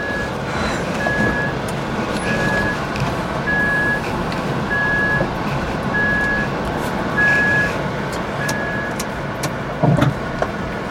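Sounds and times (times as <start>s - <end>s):
electric car reversing warning beeps: 0.0s - 0.4s, 1.0s - 1.6s, 2.2s - 2.8s, 3.5s - 4.0s, 4.7s - 5.3s, 5.9s - 6.5s, 7.2s - 7.8s, 8.4s - 9.0s
constant low engine rumble inside an electric car: 0.0s - 10.8s.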